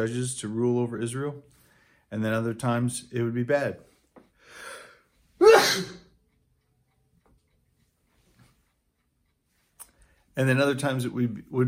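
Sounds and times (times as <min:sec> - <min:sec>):
speech: 0:00.0 - 0:03.9, 0:05.6 - 0:06.0, 0:10.4 - 0:11.6
sneeze: 0:05.4 - 0:06.1.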